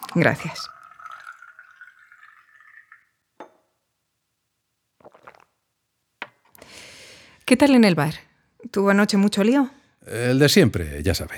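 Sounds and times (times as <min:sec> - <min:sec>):
water poured into a glass: 0:00.0 - 0:03.6, 0:05.0 - 0:05.6
glassware clinking as it is set down: 0:00.0 - 0:03.7
speech: 0:00.1 - 0:00.8, 0:07.5 - 0:11.3.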